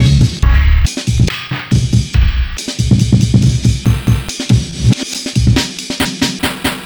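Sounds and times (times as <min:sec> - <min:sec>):
breakbeat drum loop at 140 BPM: 0:00.0 - 0:06.8.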